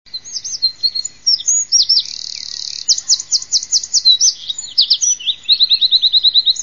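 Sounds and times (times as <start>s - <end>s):
wren singing: 0.1s - 6.6s.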